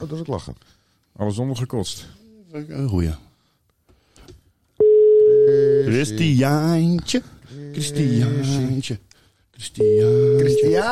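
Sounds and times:
speech: 0.0 - 3.3, 5.5 - 9.0, 9.6 - 10.9
telephone call ringing unanswered: 4.8 - 6.0, 9.8 - 10.9.

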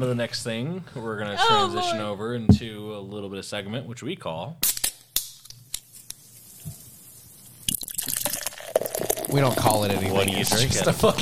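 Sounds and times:
speech: 0.0 - 4.7, 9.3 - 11.2
soda poured over ice: 5.9 - 11.2.

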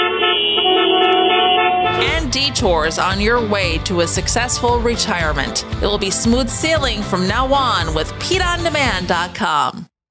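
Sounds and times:
several car horns honking in a traffic jam: 0.0 - 3.5
engines rumbling: 0.4 - 9.1
speech: 2.4 - 9.9.

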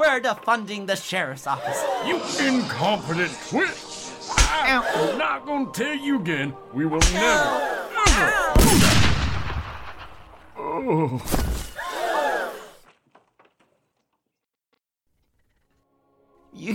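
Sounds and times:
speech: 0.2 - 3.9, 4.5 - 9.0, 10.8 - 11.6, 16.6 - 16.7
laughter: 1.5 - 2.8, 11.8 - 12.8
gunshot: 8.1 - 10.4
person groaning: 10.6 - 11.3.

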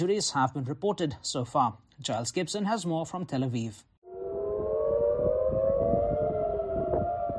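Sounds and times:
speech: 0.0 - 3.9
air raid sirens wailing over central Tel Aviv: 4.0 - 7.3.

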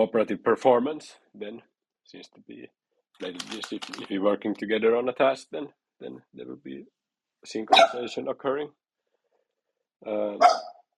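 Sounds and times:
speech: 0.0 - 8.8, 10.0 - 10.7
dog barking: 7.7 - 8.1, 10.4 - 10.8.

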